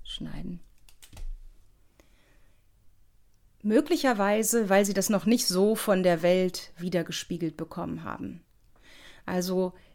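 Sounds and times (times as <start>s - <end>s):
computer keyboard key clicks as a note is typed: 0.6s - 1.4s
speech: 3.6s - 8.5s, 9.2s - 9.9s.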